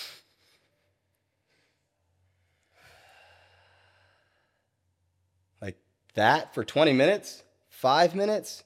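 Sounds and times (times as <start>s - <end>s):
slow deliberate breathing: 0.0s - 4.9s
speech: 5.6s - 8.6s.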